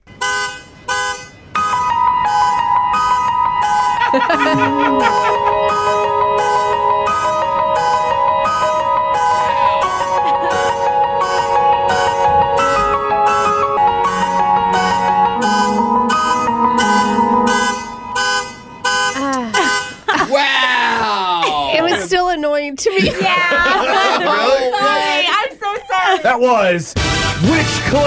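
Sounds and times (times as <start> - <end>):
car alarm blaring in steady repeating pulses: 0.1 - 20.0
keyboard chords and melody: 1.6 - 19.9
laughter: 3.9 - 6.2, 9.4 - 10.8, 19.2 - 22.2, 22.8 - 26.7
speech: 4.1 - 6.0, 26.2 - 28.0.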